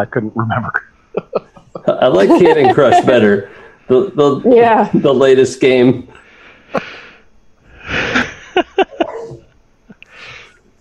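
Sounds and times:
speech: 0.0 - 7.0
laughter: 1.2 - 3.6, 7.9 - 9.3
female dog barking excitedly: 9.0 - 9.4.

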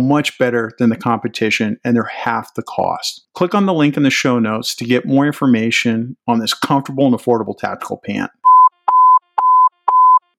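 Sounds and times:
speech: 0.0 - 8.5
loud electronic alert tones with a sharp click at the start: 8.4 - 10.3.

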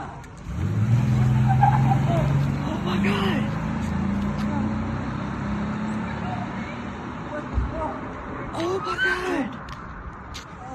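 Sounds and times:
car engine passing: 0.3 - 8.8.

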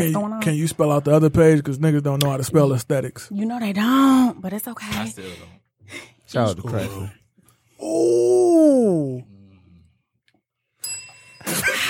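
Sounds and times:
speech: 0.0 - 7.2, 7.8 - 9.3
single bell struck and ringing: 10.8 - 11.8.

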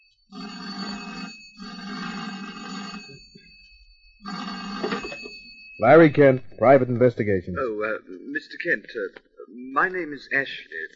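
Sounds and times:
telephone bell ringing: 0.0 - 6.0
speech: 5.8 - 10.8.

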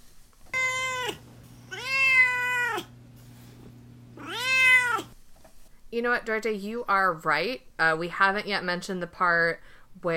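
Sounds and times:
cat meowing in long drawn-out calls: 0.5 - 2.9, 4.2 - 5.2
low steady hum: 0.6 - 5.9
speech: 6.0 - 10.1.

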